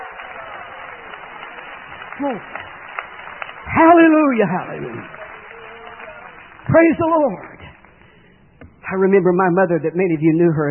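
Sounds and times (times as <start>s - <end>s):
crowd clapping: 0.0s - 8.1s
speech: 2.2s - 2.7s, 3.7s - 5.2s, 6.7s - 7.5s, 8.9s - 10.6s.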